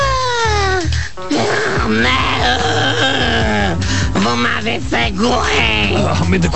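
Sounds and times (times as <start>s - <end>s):
low pulsing background: 0.0s - 6.5s
person groaning while holding breath: 1.3s - 6.2s
speech: 1.9s - 3.4s, 4.2s - 6.5s
gasping exhale after holding breath: 3.8s - 4.2s.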